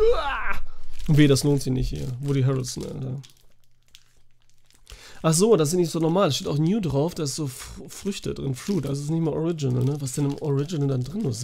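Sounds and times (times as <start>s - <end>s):
plastic snack cake wrapper crinkling as someone eats: 0.6s - 11.4s
speech: 1.1s - 3.4s, 5.2s - 11.4s.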